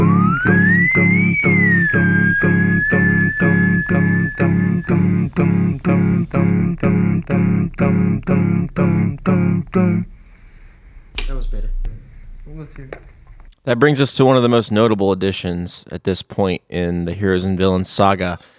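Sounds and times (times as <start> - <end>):
overdubbed group whistling imitating a French horn line: 0.0 - 11.1
group vocal harmonies: 0.0 - 13.6
steady pulsing chords: 0.0 - 13.6
speech: 13.7 - 18.5.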